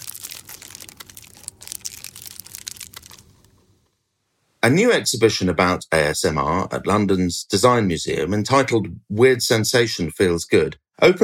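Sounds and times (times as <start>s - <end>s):
sweet wrapper crinkling while being unwrapped: 0.0s - 3.7s
speech: 4.7s - 11.2s.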